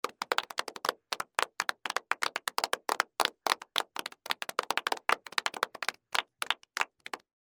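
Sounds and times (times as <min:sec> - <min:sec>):
crowd applauding: 0:00.0 - 0:07.2.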